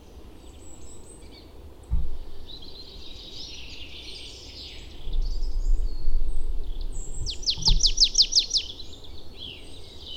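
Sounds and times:
low rumbling noise: 1.8 - 2.9, 5.0 - 8.4
Marsh tit Poecile palustris calling high downward-sweeping notes: 6.9 - 9.0.

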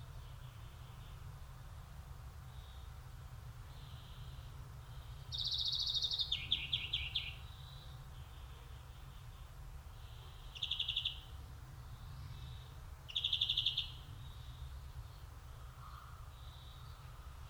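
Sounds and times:
low rumbling background noise: 0.0 - 17.4
Chloris chloris European greenfinch giving rapid trilled calls: 5.3 - 8.0, 10.4 - 11.3, 13.1 - 14.4.

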